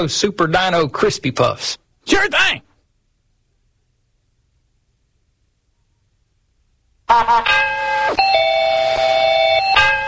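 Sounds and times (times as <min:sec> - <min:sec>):
speech: 0:00.0 - 0:02.7, 0:07.1 - 0:07.7
mail bell doorbell-style electronic chime: 0:07.6 - 0:10.0.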